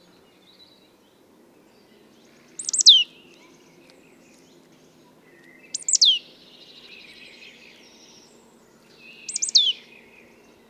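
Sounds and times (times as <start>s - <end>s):
marsh tit Poecile palustris calling: 2.6s - 3.0s, 5.7s - 6.2s, 9.3s - 9.8s.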